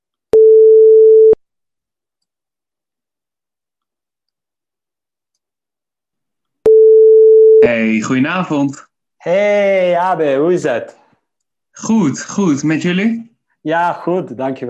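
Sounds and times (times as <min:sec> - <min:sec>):
telephone ringback tone: 0:00.4 - 0:01.4, 0:06.7 - 0:07.6
speech: 0:07.6 - 0:11.0, 0:11.8 - 0:14.6.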